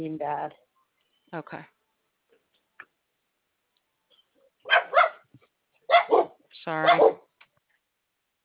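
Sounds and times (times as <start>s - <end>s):
speech: 0.0s - 0.7s, 1.3s - 1.8s, 6.6s - 7.2s
dog barking at passers-by: 4.6s - 5.3s, 5.9s - 7.3s.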